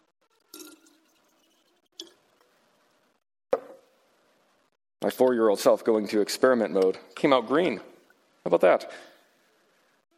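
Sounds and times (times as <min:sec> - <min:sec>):
dirty water poured into a container of clean water: 0:00.4 - 0:02.1
speech: 0:05.0 - 0:09.1.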